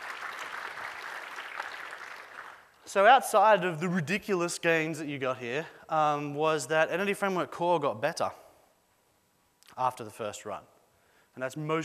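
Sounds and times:
audience applauding after a live technical demo of database software: 0.0s - 2.7s
speech: 2.9s - 8.4s, 9.8s - 10.7s, 11.4s - 11.8s.

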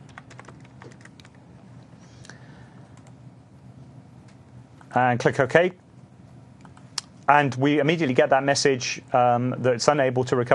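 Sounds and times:
keystrokes on a computer keyboard typing a password: 0.0s - 1.4s, 2.9s - 3.2s
faint steady hiss: 0.6s - 10.5s
speech: 4.9s - 5.8s, 7.3s - 10.5s.

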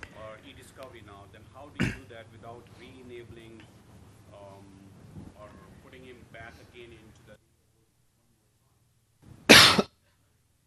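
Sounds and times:
faint low rumble: 0.0s - 9.5s
person on a call coughing: 1.8s - 2.1s, 9.5s - 9.9s.

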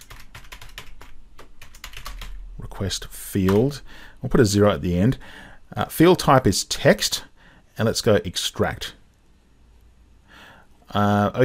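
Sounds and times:
typing on a computer keyboard: 0.0s - 2.4s
speech: 2.8s - 9.0s, 10.9s - 11.4s.

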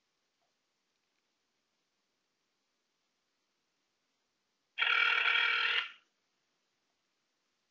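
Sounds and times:
electronic telephone ring from a call being placed: 4.8s - 6.0s.

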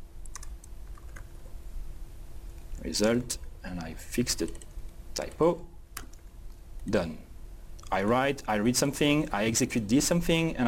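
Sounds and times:
typing code on a computer keyboard at a console: 0.2s - 1.3s, 4.4s - 4.7s
speech: 2.8s - 5.7s, 6.8s - 7.3s, 7.9s - 10.6s.

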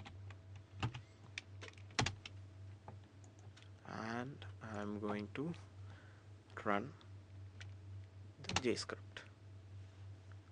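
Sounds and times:
steady low hum: 0.0s - 10.5s
computer keyboard typing at a command prompt: 0.8s - 2.4s, 8.4s - 8.8s
speech: 4.2s - 5.7s, 6.6s - 7.0s, 8.6s - 9.2s.

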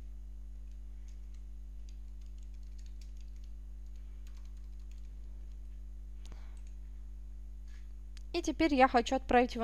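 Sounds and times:
low electrical hum: 0.0s - 9.6s
typing on a computer keyboard: 0.6s - 5.7s
speech: 8.4s - 9.6s.

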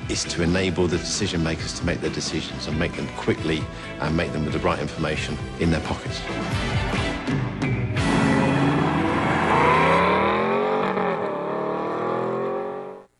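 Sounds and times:
speech: 0.1s - 7.5s
Aston Martin V12 engine revving: 8.0s - 13.1s.

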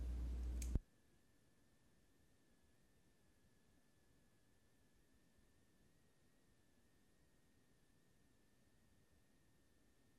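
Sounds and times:
low hum: 0.0s - 5.2s
computer mouse click: 0.6s - 0.8s.

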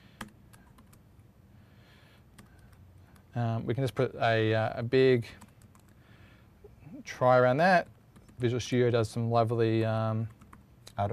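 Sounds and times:
typing on a computer keyboard while writing code: 0.2s - 1.0s, 2.4s - 3.3s, 5.3s - 6.0s, 7.8s - 8.5s, 9.8s - 11.0s
speech: 3.4s - 5.5s, 7.1s - 10.4s, 11.0s - 11.1s.

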